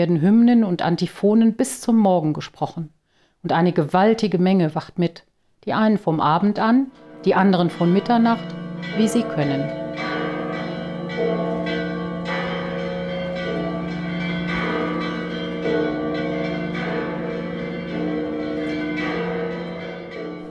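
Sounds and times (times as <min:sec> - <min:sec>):
speech: 0:00.0 - 0:10.1
large church bells of the Church of the Holy Sepulchre in Jerusalem pealing: 0:06.9 - 0:20.4.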